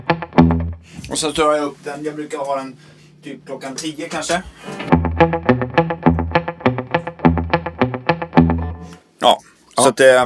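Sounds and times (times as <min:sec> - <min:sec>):
electric guitar picked notes through a reverb or delay effect: 0:00.0 - 0:00.9, 0:04.6 - 0:09.0
speech: 0:01.1 - 0:05.7, 0:09.2 - 0:10.2.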